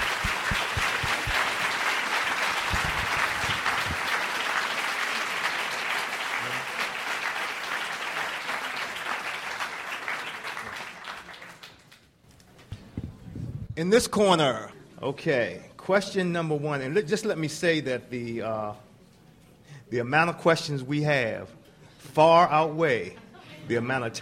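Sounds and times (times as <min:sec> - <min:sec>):
audience applause for guests before a Q and A: 0:00.0 - 0:12.0
speech: 0:13.8 - 0:18.8, 0:19.9 - 0:24.2.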